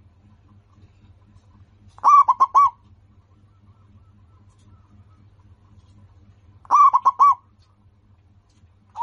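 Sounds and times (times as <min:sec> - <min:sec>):
zebra dove cooing: 0:02.0 - 0:05.2, 0:06.6 - 0:07.6.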